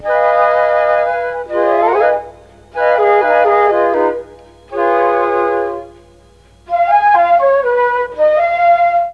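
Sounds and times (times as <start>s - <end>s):
Mellotron G#3 note: 0.0s - 9.1s.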